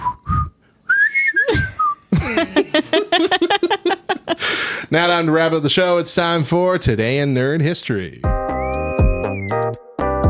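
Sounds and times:
bright catchy whistled theme tune: 0.0s - 2.1s, 8.3s - 9.9s
laughter: 1.5s - 4.9s
speech: 4.9s - 8.4s.

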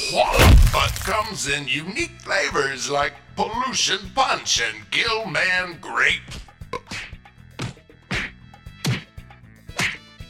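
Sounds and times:
speech: 0.1s - 6.5s
sharp whacks of someone being hit: 6.8s - 10.1s.

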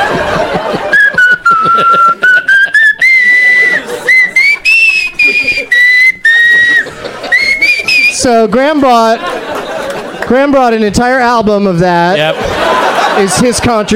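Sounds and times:
laughter: 0.0s - 10.9s, 12.1s - 13.9s
person whistling a melodic tune: 0.9s - 8.2s
speech: 8.2s - 9.3s, 10.3s - 13.9s.

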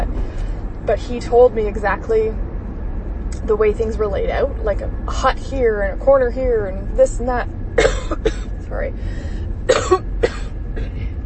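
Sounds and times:
low rumble: 0.0s - 11.2s
speech: 0.9s - 2.4s, 3.4s - 9.3s
person coughing: 7.8s - 8.5s, 9.7s - 11.1s.

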